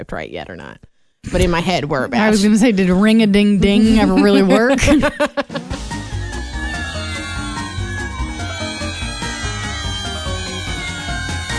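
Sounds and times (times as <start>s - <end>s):
speech: 0.0s - 5.6s
laughter: 3.7s - 11.5s
cat meowing with drawn-out wavering cries in a sound effect: 5.8s - 11.5s.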